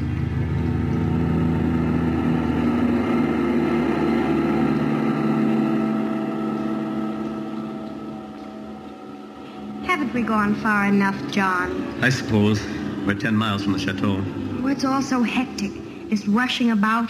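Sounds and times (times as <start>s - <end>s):
vehicle engine droning at constant speed: 0.0s - 17.0s
speech: 10.1s - 17.0s.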